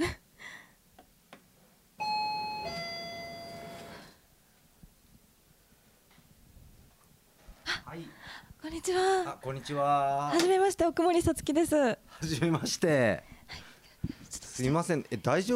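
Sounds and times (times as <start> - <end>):
intercom doorbell two-note electronic ding-dong: 2.0 - 4.0
speech: 8.7 - 13.6, 14.6 - 15.5.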